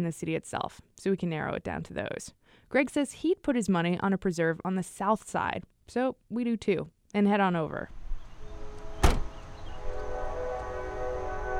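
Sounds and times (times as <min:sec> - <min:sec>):
speech: 0:00.0 - 0:08.0
train passing nearby: 0:08.0 - 0:11.5
sharp clunk: 0:09.0 - 0:09.4.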